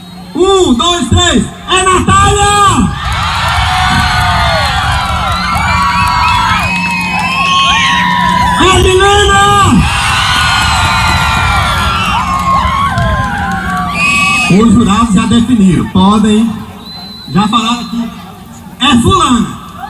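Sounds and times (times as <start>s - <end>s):
loud audience cheering and shouting: 0.0s - 19.8s
speech: 0.4s - 3.0s, 14.5s - 16.6s, 17.3s - 18.2s, 18.8s - 19.5s
many overlapping high voices whooping and screaming: 2.4s - 15.0s, 19.7s - 19.8s.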